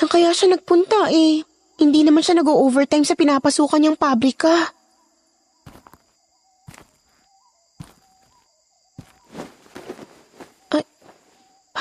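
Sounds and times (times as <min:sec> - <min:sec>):
speech: 0:00.0 - 0:04.8, 0:10.7 - 0:10.9
steady chorus of night insects humming: 0:00.0 - 0:11.7
slow heavy footsteps of a man walking in the yard at night: 0:05.6 - 0:11.6.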